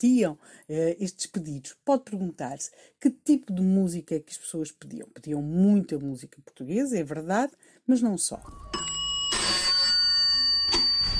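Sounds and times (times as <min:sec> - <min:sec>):
speech: 0:00.0 - 0:08.9
old telephone bell ringing: 0:08.4 - 0:11.1.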